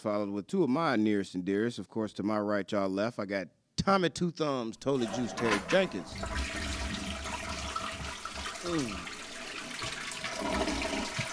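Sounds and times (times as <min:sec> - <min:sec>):
speech: 0:00.0 - 0:06.8, 0:08.6 - 0:09.2
toilet flushing: 0:04.8 - 0:11.3.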